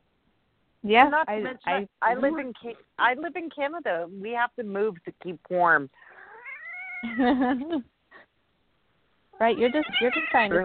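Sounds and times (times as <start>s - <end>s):
speech: 0.8s - 6.1s, 7.0s - 7.9s, 9.4s - 10.6s
upset cat yowling and meowing: 6.2s - 7.2s, 9.4s - 10.6s.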